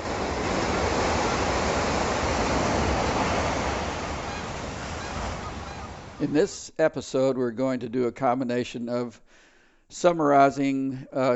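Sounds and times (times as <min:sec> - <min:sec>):
ocean waves breaking on the California coast at Monterey near the aquarium: 0:00.0 - 0:06.6
speech: 0:06.2 - 0:11.3.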